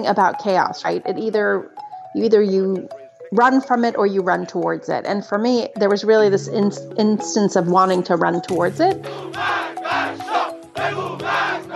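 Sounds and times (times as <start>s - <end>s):
speech: 0.0s - 10.2s
large protest crowd chanting slogans in unison: 9.1s - 11.7s.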